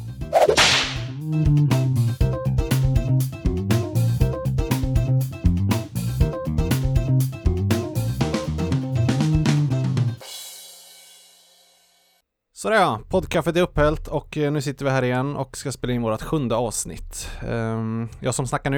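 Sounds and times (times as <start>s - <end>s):
bouncy rhythmic tune with punchy percussion: 0.0s - 12.0s
single sharp whip crack: 0.4s - 1.0s
speech: 12.6s - 18.7s.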